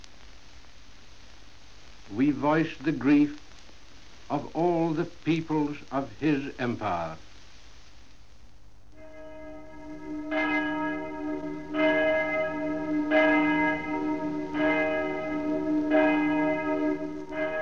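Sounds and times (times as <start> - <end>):
speech: 2.1 - 3.4, 4.3 - 7.3
great bell of a cathedral tolling a requiem: 9.0 - 17.6.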